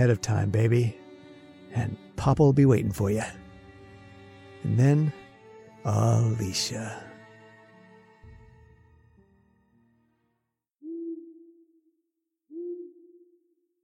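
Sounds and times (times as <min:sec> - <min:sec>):
speech: 0:00.0 - 0:01.0, 0:01.7 - 0:03.4, 0:04.6 - 0:05.2, 0:05.8 - 0:07.1
sustained musical tones: 0:00.0 - 0:10.0
owl hooting: 0:10.8 - 0:11.8, 0:12.5 - 0:13.6.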